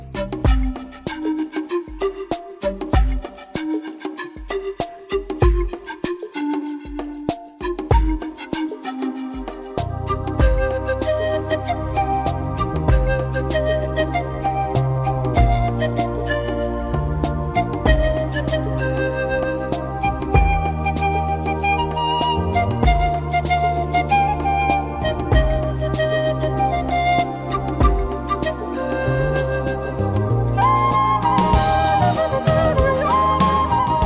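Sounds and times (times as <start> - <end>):
flute solo: 0.1 - 34.0.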